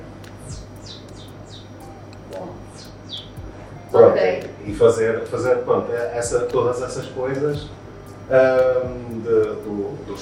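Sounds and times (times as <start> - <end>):
low steady hum: 0.0 - 10.2
person imitating birds chirping with their mouth: 0.4 - 3.4
speech: 2.3 - 2.9, 3.9 - 10.2.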